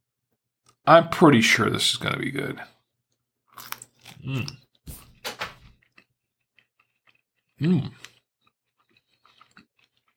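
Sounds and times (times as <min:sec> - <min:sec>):
speech: 0:00.8 - 0:02.8, 0:03.6 - 0:04.6, 0:07.6 - 0:08.1
fresh chocolate-dipped strawberry being bitten and chewed: 0:03.5 - 0:10.1.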